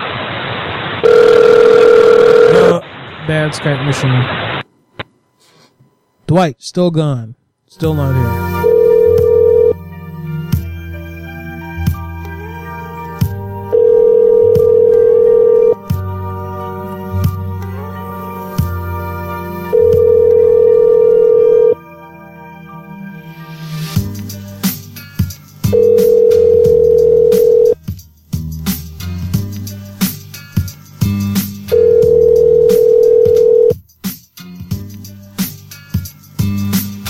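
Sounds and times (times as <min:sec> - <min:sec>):
outgoing phone ring tone of an unanswered call: 0:01.0 - 0:02.8, 0:08.4 - 0:09.8, 0:13.6 - 0:15.8, 0:19.6 - 0:21.8, 0:25.6 - 0:27.8, 0:31.7 - 0:33.8
speech: 0:03.3 - 0:04.4, 0:06.3 - 0:08.6
faint busy musical background: 0:05.3 - 0:33.8.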